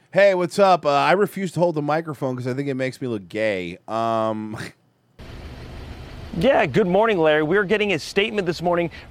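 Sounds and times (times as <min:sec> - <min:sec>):
speech: 0:00.1 - 0:04.8, 0:06.4 - 0:09.0
diesel truck engine idling: 0:05.2 - 0:09.0.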